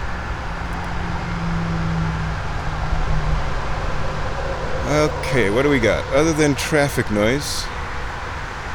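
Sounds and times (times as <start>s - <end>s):
road traffic rumble: 0.0s - 8.7s
speech: 4.9s - 7.8s.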